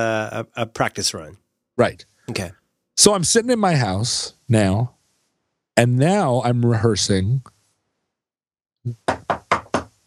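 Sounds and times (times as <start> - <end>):
speech: 0.0 - 5.0, 5.8 - 7.6, 8.8 - 9.1
knocking on a wooden door: 8.9 - 9.9.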